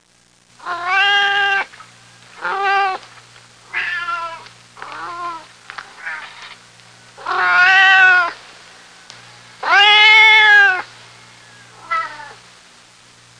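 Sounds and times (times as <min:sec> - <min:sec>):
cats meowing: 0:00.6 - 0:01.7, 0:02.4 - 0:03.0, 0:03.7 - 0:06.4, 0:07.2 - 0:08.4, 0:09.6 - 0:10.9, 0:11.5 - 0:12.4.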